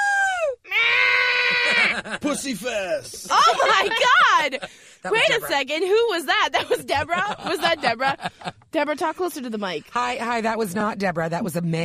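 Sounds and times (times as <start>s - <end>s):
high-pitched scream sliding downward: 0.0s - 2.0s
laughter: 1.4s - 5.6s, 6.5s - 8.6s
speech: 2.0s - 11.8s.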